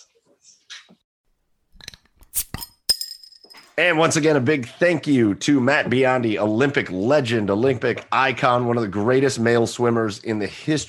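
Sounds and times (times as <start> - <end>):
beer drinks clinking in a toast: 1.8 - 3.7
speech: 3.8 - 10.8.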